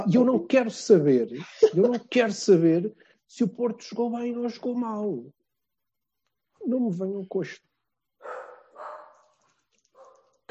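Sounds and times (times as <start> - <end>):
speech: 0.0 - 5.4, 6.6 - 8.4
dog barking: 8.2 - 10.4.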